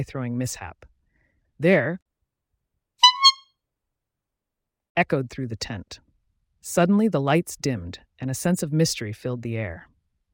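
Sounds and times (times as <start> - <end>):
speech: 0.0 - 0.9, 1.6 - 2.0, 5.0 - 6.0, 6.6 - 9.9
clown's rubber-bulb nose horn honking at a circus: 3.0 - 3.4.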